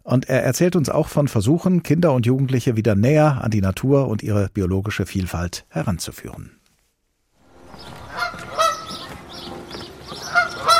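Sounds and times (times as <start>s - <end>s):
speech: 0.1s - 6.6s
flock of Canada geese honking: 7.4s - 10.7s.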